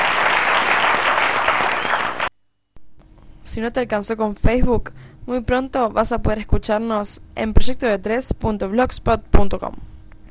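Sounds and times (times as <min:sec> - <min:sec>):
audience applause: 0:00.0 - 0:02.3
speech: 0:03.6 - 0:09.9.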